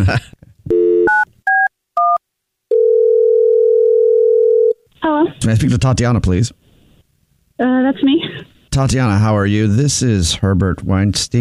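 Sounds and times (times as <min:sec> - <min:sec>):
speech: 0:00.0 - 0:00.4, 0:05.4 - 0:06.6, 0:07.6 - 0:11.4
phone dial tone: 0:00.7 - 0:04.8.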